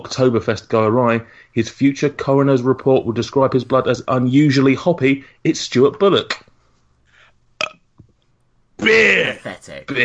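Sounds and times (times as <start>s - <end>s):
speech: 0.0s - 6.5s, 8.8s - 10.0s
short fairly loud burp: 7.6s - 7.8s.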